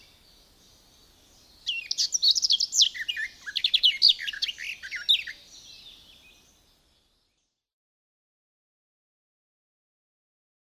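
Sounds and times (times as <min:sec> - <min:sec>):
garden warbler singing: 0:00.0 - 0:07.7.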